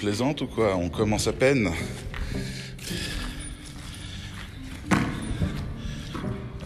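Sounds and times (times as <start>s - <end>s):
speech: 0.0s - 3.1s
wind: 0.0s - 6.6s
ball bouncing in an old mine tunnel: 4.8s - 6.4s.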